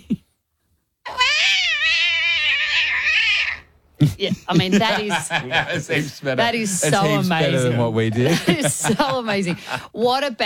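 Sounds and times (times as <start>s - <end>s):
voice imitating a cat falling down stairs with a yowl: 1.0s - 3.6s
laughter: 4.0s - 10.0s
speech: 4.0s - 10.4s.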